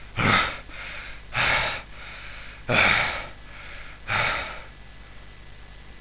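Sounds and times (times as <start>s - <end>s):
fast breathing: 0.0s - 4.8s.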